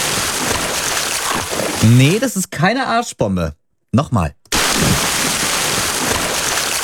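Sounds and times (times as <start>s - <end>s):
person falling headfirst into water while waterskiing: 0.0s - 2.1s, 4.5s - 6.8s
speech: 1.8s - 4.4s.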